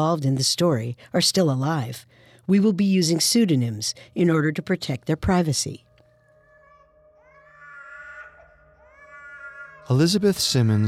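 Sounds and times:
speech: 0:00.0 - 0:05.9, 0:09.9 - 0:10.8
infant wailing: 0:06.1 - 0:10.2.

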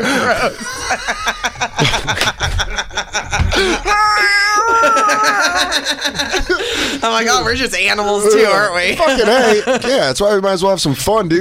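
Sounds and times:
laughter: 0:00.0 - 0:10.2
speech: 0:00.3 - 0:02.0, 0:06.3 - 0:11.3
person imitating a cat in heat yowling: 0:03.9 - 0:05.8.

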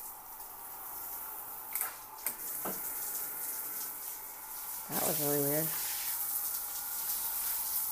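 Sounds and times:
shower head spraying hot water: 0:00.0 - 0:07.9
speech: 0:04.9 - 0:05.8.

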